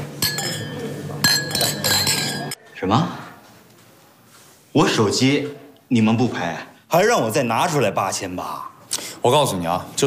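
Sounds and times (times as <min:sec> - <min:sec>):
glasses clinking in a celebratory toast at a dinner: 0:00.0 - 0:02.6
speech: 0:02.8 - 0:03.2, 0:04.8 - 0:10.0.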